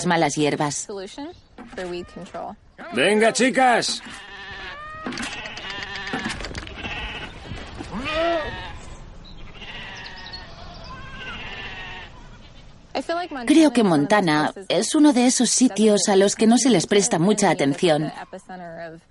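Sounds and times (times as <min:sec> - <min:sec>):
speech: 0:00.0 - 0:04.3, 0:13.0 - 0:19.1
herd of meat goats bleating on a farm by the Yellowstone River: 0:03.2 - 0:12.2.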